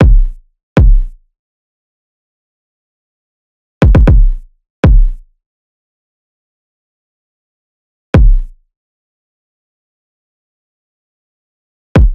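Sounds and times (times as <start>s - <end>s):
kick drum loop: 0.0s - 1.2s, 3.8s - 5.3s, 8.2s - 8.6s, 12.0s - 12.1s.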